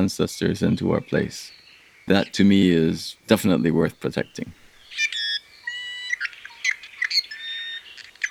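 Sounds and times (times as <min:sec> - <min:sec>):
speech: 0:00.0 - 0:04.6
iiwi Hawaiian honeycreeper calls: 0:02.1 - 0:07.8.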